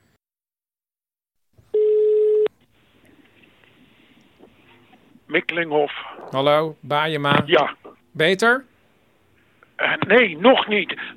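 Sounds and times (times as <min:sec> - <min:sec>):
loud steady telephone tone: 0:01.7 - 0:02.5
speech: 0:05.3 - 0:08.7, 0:09.8 - 0:11.1.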